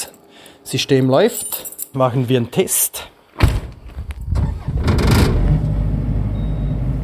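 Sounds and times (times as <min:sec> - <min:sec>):
speech: 0:00.7 - 0:03.1
emergency power generator cranking and catching: 0:04.3 - 0:06.8.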